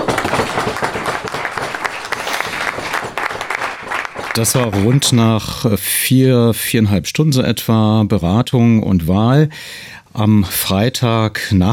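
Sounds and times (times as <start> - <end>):
applause from a sizable audience after an election result announcement: 0.0 - 5.3
speech: 4.4 - 11.7.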